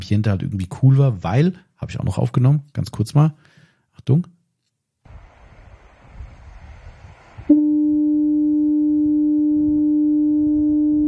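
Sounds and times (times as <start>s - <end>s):
speech: 0.0s - 4.4s
low rumbling wind or surf: 5.1s - 8.0s
lighthouse foghorn on a foggy coast: 7.4s - 11.0s.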